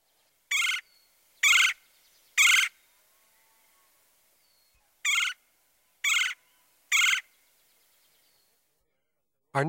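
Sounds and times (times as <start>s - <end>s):
red-headed woodpecker calls: 0.5s - 1.8s, 2.4s - 2.8s, 4.7s - 5.4s, 6.0s - 7.4s.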